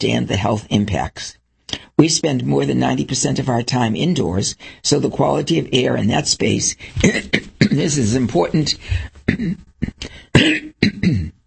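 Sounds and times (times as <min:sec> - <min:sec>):
speech: 0:00.0 - 0:01.4, 0:02.0 - 0:11.3
harsh throaty coughing: 0:06.8 - 0:11.4.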